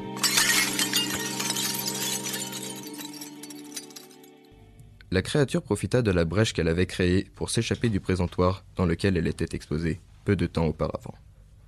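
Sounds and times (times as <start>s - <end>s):
glass display case shattering: 0.0s - 4.3s
glass shards clattering onto the floor: 0.0s - 4.3s
speech: 5.1s - 11.3s.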